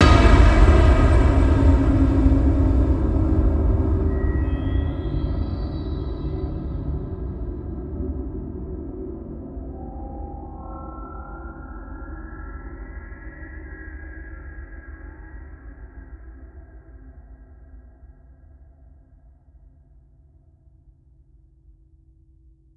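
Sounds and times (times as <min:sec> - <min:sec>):
cinematic impacts: 0:00.0 - 0:11.6
long cinematic drone: 0:00.0 - 0:16.0.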